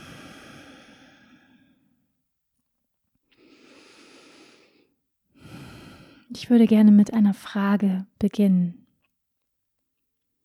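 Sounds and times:
slow deep breathing in and out during a guided heart-centred meditation: 0.0s - 2.0s, 3.3s - 6.3s
speech: 6.3s - 8.8s.

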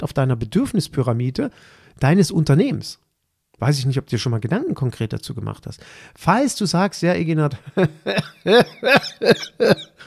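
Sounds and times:
speech: 0.0s - 3.0s, 3.6s - 9.9s
laughter: 7.7s - 10.0s
person coughing: 7.8s - 10.0s.

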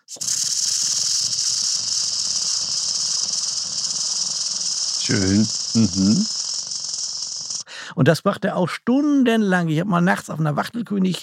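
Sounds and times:
grasshopper warbler reeling trill: 0.0s - 7.7s
speech: 0.1s - 0.7s, 5.1s - 6.4s, 8.0s - 11.2s
short voiced sounds: 5.0s - 6.3s.

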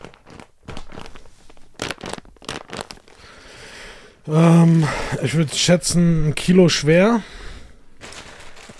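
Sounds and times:
plastic bag crinkling as a wrapped package is squeezed: 0.0s - 3.6s, 4.3s - 5.9s, 7.9s - 8.7s
speech: 4.2s - 7.3s.

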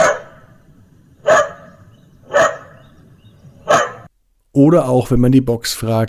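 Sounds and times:
dog barking from a talking speaker box: 0.0s - 0.6s, 1.2s - 2.9s, 3.6s - 4.1s
speech: 4.6s - 6.0s.

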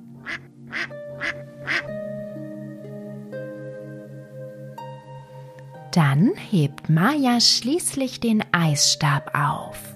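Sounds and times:
soft sustained musical tones: 0.0s - 9.9s
duck quacking: 0.2s - 1.9s
speech: 6.0s - 9.9s.

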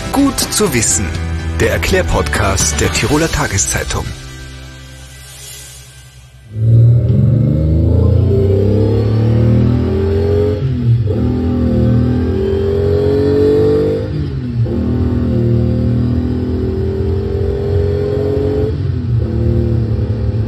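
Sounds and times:
speech: 0.2s - 4.2s
car engine revving hard under heavy acceleration: 6.5s - 20.4s.

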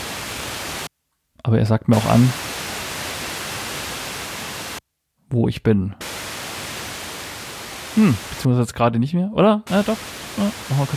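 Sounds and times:
radio static hiss while turning a station tuning dial: 0.0s - 0.9s, 1.9s - 4.8s, 6.0s - 8.5s, 9.7s - 10.9s
speech: 1.5s - 2.5s, 5.3s - 6.1s, 8.0s - 10.9s.

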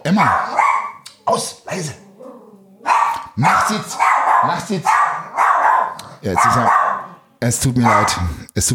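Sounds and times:
speech: 0.1s - 0.6s, 1.3s - 2.0s, 3.4s - 5.0s, 6.2s - 6.8s, 7.4s - 8.7s
dog barking: 0.1s - 1.0s, 2.8s - 7.2s, 7.8s - 8.3s.

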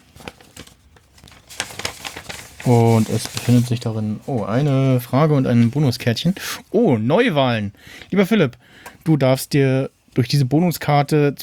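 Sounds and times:
paper envelope being opened with crinkling and tearing: 0.1s - 6.1s
speech: 2.6s - 11.4s.

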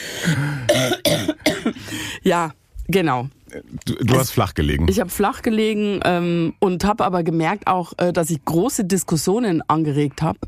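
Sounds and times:
person coughing harshly: 0.2s - 2.0s
speech: 0.2s - 10.4s.

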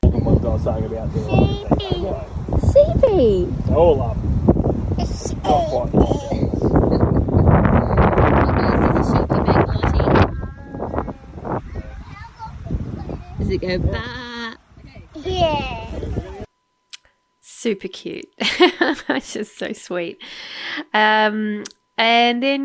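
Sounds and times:
gusty wind blowing across the microphone on a family property: 0.0s - 16.5s
speech: 0.6s - 4.3s, 5.4s - 6.4s, 13.5s - 14.2s, 15.4s - 15.9s, 17.6s - 22.6s
small child chattering and singing: 1.1s - 2.3s, 5.0s - 6.7s, 10.1s - 13.4s, 15.2s - 16.3s.

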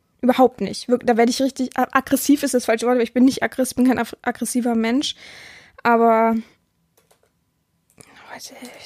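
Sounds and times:
speech: 0.2s - 6.5s, 8.4s - 8.8s
soft taps on a computer keyboard: 7.0s - 7.4s.

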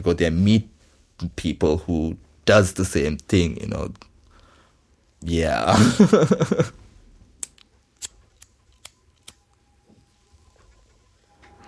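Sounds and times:
speech: 0.0s - 4.1s, 5.2s - 6.8s
laughter: 5.7s - 6.8s
lighter clicking: 7.4s - 9.5s.

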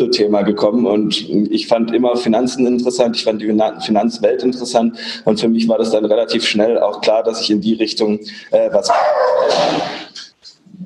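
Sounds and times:
speech: 0.1s - 10.2s
dog barking: 8.9s - 9.6s.

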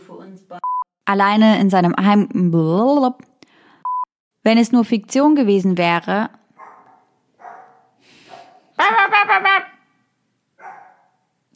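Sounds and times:
speech: 0.5s - 3.3s, 4.4s - 6.4s
dogs barking in the distance: 6.6s - 8.8s, 10.6s - 11.3s.

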